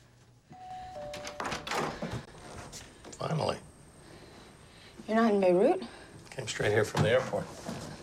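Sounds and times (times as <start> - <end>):
soft two-note chime: 0.5 - 1.6
speech: 3.2 - 3.7, 5.1 - 7.7.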